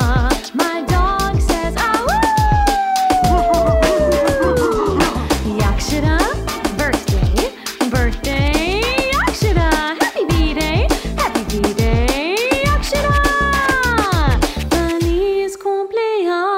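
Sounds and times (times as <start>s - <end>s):
celebration song with busy musical backing: 0.0s - 16.4s
dog yowling and howling along to a birthday song: 2.1s - 5.2s.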